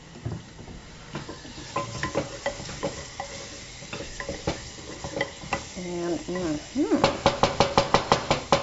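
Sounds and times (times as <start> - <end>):
minced garlic sizzling in olive oil with anchovies in a pan: 0.0 - 8.6
utensil scraping and tapping against the pan: 1.1 - 7.2
speech: 6.3 - 7.2.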